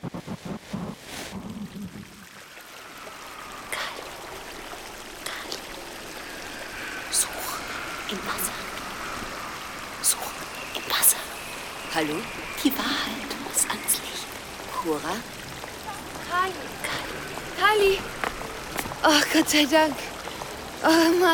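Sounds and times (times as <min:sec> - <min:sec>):
water trickling and splashing in a fountain: 0:00.5 - 0:21.2
speech: 0:19.4 - 0:20.1, 0:20.9 - 0:21.2.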